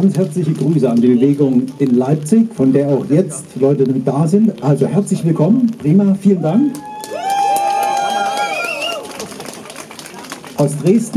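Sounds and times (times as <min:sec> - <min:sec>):
speech: 0:00.0 - 0:06.9, 0:10.6 - 0:11.1
crowd cheering and whooping: 0:06.4 - 0:09.8
steady wash of clapping: 0:06.7 - 0:10.7.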